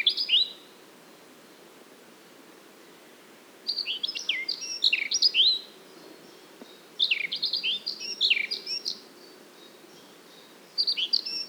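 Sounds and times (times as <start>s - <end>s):
Eurasian blackcap Sylvia atricapilla slurred whistled song: 3.7s - 5.7s, 7.0s - 9.0s, 10.0s - 11.4s.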